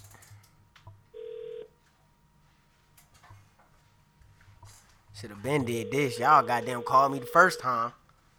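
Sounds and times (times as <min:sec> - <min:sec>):
ringback tone from an outgoing phone call: 0:01.1 - 0:01.7, 0:05.6 - 0:07.8
speech: 0:05.2 - 0:08.0.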